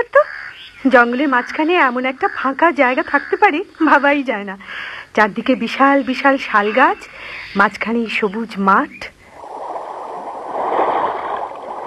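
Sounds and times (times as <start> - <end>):
speech: 0.8 - 9.2
small calm river flowing through a forest: 9.2 - 11.8.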